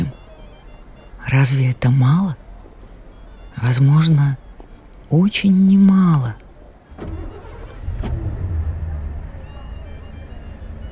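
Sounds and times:
speech: 0:01.3 - 0:02.4, 0:03.6 - 0:04.4, 0:05.1 - 0:06.4
car engine turning over into a deep steady rumble as the car moves off: 0:06.8 - 0:10.9
sharp mechanical clunks: 0:06.9 - 0:08.9.

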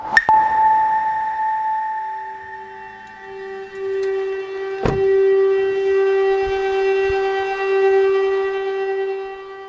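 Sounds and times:
air raid warning siren in Sloviansk, Donetsk region, eastern Ukraine: 0:01.0 - 0:09.6.

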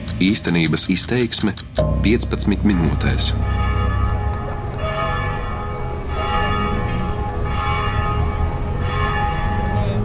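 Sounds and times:
speech: 0:00.2 - 0:03.7
Catholic church bells ringing in Aleppo Syria: 0:01.8 - 0:10.0.

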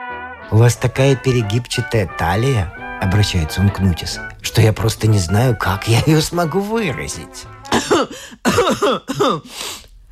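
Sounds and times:
speech: 0:00.5 - 0:09.8
person acting out voiced cough-like bursts ending in a breathy rasp: 0:07.7 - 0:09.8.

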